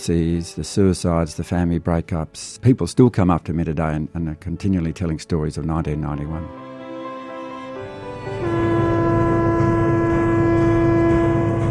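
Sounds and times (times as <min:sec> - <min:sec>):
speech: 0:00.0 - 0:06.7
train horn at a port waterfront: 0:06.5 - 0:11.6.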